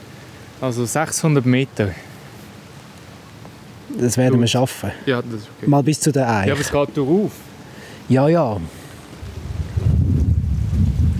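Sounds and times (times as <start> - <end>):
speech: 0.6 - 2.1, 4.0 - 7.5, 8.1 - 8.8
strong wind buffeting microphone outdoors during a hike: 8.6 - 11.1.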